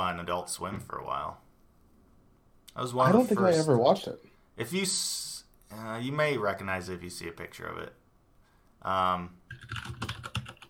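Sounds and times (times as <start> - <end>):
speech: 0.0 - 1.5, 2.8 - 8.0, 8.8 - 10.1
typing on a mechanical keyboard: 9.5 - 10.6.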